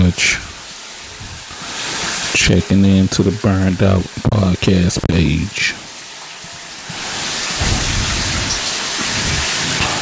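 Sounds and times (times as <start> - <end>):
steady rain pouring outdoors: 0.0 - 9.9
speech: 0.1 - 0.4, 2.5 - 5.8
thunder: 7.1 - 9.9.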